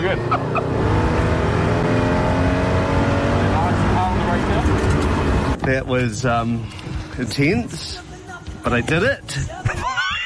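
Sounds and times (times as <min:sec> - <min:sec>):
speech: 0:00.0 - 0:01.0, 0:05.7 - 0:09.7
race car engine roaring and revving after a spin-out: 0:00.0 - 0:05.6.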